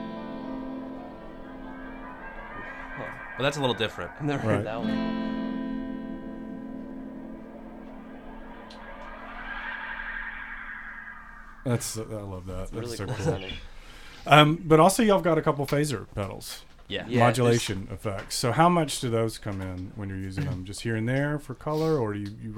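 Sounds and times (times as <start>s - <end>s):
repeating warbling tape-delay echoes: 0.0s - 12.1s
sustained droning tone through a tape-delay space echo: 0.0s - 12.1s
tape-delay feedback wash: 0.0s - 12.5s
speech: 3.0s - 5.3s, 11.6s - 22.5s.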